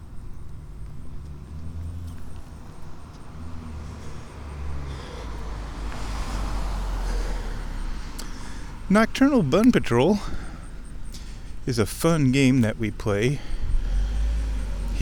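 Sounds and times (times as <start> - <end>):
outdoor noise: 0.0 - 15.0
car approaching along a road: 0.6 - 8.9, 13.7 - 15.0
speech: 8.9 - 10.4, 11.7 - 13.6.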